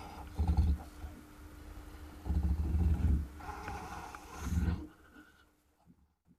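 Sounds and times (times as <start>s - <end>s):
wolverine growling: 0.0s - 1.2s, 2.2s - 4.9s.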